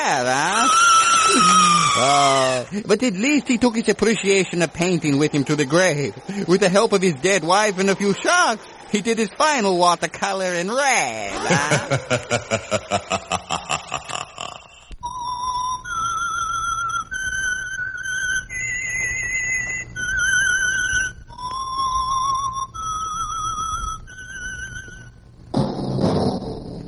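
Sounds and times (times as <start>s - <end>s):
speech: 0.0s - 13.4s
whistled signature melody from an old radio drama: 0.7s - 2.6s, 15.0s - 25.2s
laughter: 11.3s - 14.8s.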